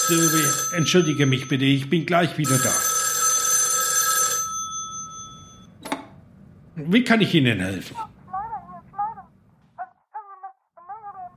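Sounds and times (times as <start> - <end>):
metallic telephone bell ringing: 0.0 - 5.7
speech: 0.1 - 2.8, 6.8 - 8.1.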